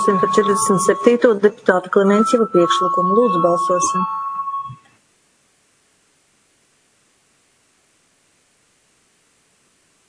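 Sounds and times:
speech: 0.0 - 4.2
parliamentary voting electronic bell tone: 0.0 - 4.9.

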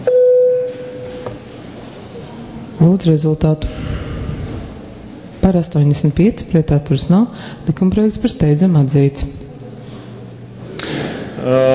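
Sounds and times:
parliament voting bell electronic tone before a vote: 0.0 - 1.2
quiet hum: 0.0 - 11.7
speech: 2.8 - 3.9, 5.5 - 9.4.

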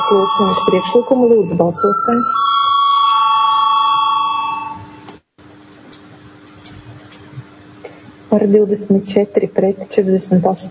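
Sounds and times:
electric bell ringing in a parliamentary chamber to call a vote: 0.0 - 5.1
speech: 0.1 - 2.7, 8.3 - 10.6.

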